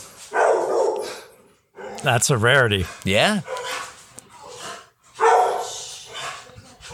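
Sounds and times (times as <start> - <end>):
dog barking and yipping: 0.3 - 2.1, 3.4 - 3.9, 4.5 - 6.6
speech: 2.0 - 3.6.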